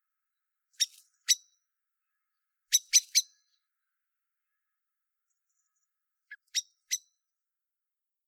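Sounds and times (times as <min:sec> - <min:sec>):
common blackbird Turdus merula chinking calls: 0:00.8 - 0:01.4, 0:02.7 - 0:03.4.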